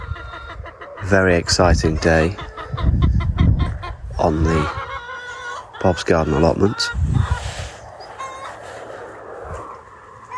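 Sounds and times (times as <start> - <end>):
chickens clucking outdoors: 0.0 - 10.3
speech: 1.0 - 3.0, 4.2 - 4.8, 5.8 - 7.3.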